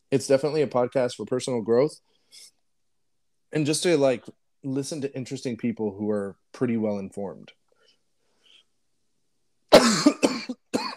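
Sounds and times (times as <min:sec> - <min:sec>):
speech: 0:00.1 - 0:02.6, 0:03.5 - 0:07.6
man coughing to clear something in his throat: 0:09.7 - 0:10.9.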